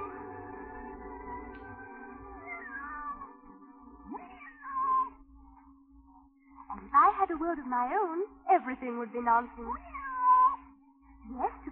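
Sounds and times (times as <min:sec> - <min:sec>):
steady low hum: 0:00.0 - 0:11.7
cat meowing: 0:02.4 - 0:03.3, 0:04.1 - 0:05.2, 0:09.8 - 0:10.7
speech: 0:07.3 - 0:09.9.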